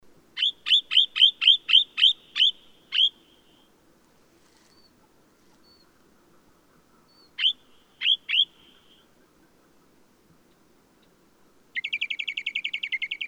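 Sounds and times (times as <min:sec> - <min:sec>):
Eastern Rock Nuthatch Sitta tephronota singing in Karatau Kazakhstan: 0:00.4 - 0:03.7, 0:05.6 - 0:06.0, 0:06.9 - 0:09.2, 0:11.8 - 0:13.2.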